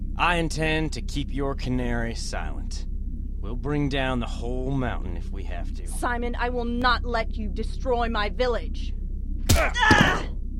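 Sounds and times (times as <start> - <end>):
speech: 0.2 - 9.0, 9.6 - 10.2
heavy punch striking a woman with a smacking thud: 9.5 - 10.3
pained vocal groan: 9.5 - 10.3.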